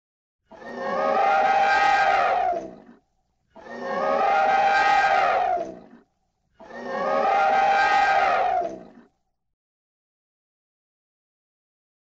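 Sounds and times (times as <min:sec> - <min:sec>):
elephant trumpeting: 0:00.5 - 0:02.9, 0:03.6 - 0:06.0, 0:06.6 - 0:09.0.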